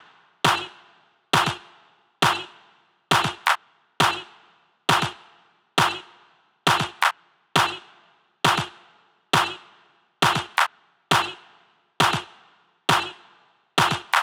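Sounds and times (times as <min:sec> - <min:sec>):
layered analog clap: 0:00.0 - 0:00.8, 0:01.4 - 0:04.3, 0:05.8 - 0:06.1, 0:06.7 - 0:07.8, 0:08.5 - 0:08.8, 0:09.4 - 0:09.6, 0:10.2 - 0:11.4, 0:12.0 - 0:12.3, 0:12.9 - 0:13.2, 0:13.8 - 0:14.2.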